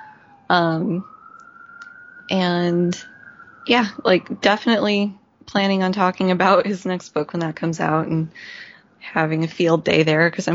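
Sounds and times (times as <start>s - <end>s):
police car siren passing by: 0.0s - 6.6s
speech: 0.5s - 1.2s, 2.3s - 10.5s.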